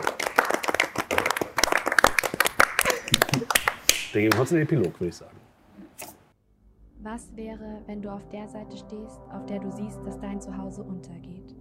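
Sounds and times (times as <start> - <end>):
audience applause at a live role-play session: 0.0 - 4.9
speech: 4.2 - 5.4, 7.0 - 11.5.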